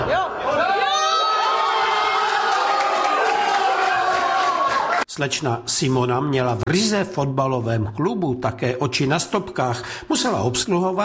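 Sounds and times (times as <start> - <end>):
overlapping shouts and whoops: 0.0 - 5.0
large crowd of football fans cheering after a goal: 0.0 - 5.1
speech: 5.2 - 11.0.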